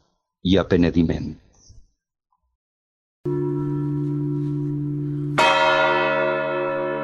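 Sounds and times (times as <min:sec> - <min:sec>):
speech: 0:00.4 - 0:01.4
large bronze church bell tolling in Valencia Cathedral bell tower: 0:03.3 - 0:07.0.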